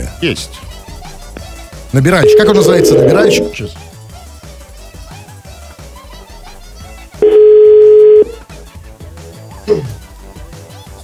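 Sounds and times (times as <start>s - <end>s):
speech: 0.2s - 0.7s, 1.9s - 3.9s
telephone dial tone while dialing a number: 2.2s - 3.6s, 7.2s - 8.4s
brief beep: 2.2s - 3.7s, 7.2s - 8.4s.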